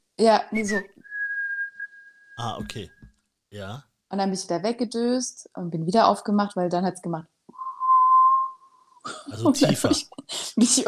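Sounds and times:
speech: 0.2s - 0.9s, 2.4s - 7.3s, 9.0s - 10.8s
person imitating whistling in a minor key: 0.6s - 3.1s, 7.5s - 8.8s
laughter: 2.4s - 2.8s, 9.1s - 10.8s.

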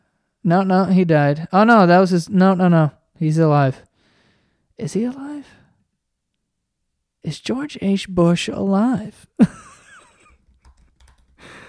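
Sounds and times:
speech: 0.4s - 3.9s, 4.8s - 5.6s, 7.2s - 9.7s
quick light typing on a computer keyboard: 10.3s - 11.4s.

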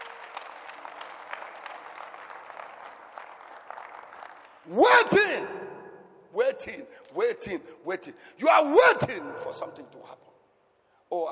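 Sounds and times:
audience clapping: 0.0s - 5.7s
speech: 4.7s - 5.6s, 6.6s - 10.3s.

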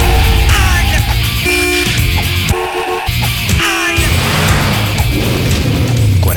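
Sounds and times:
Chevy car brakes screeching in a long skid on Avenida Independencia: 0.0s - 5.4s
rumbling traffic: 0.0s - 6.3s.

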